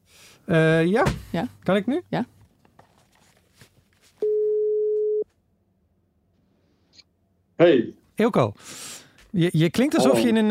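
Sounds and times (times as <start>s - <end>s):
speech: 0.5s - 2.4s, 7.6s - 10.4s
telephone dial tone while placing a call: 4.2s - 5.2s.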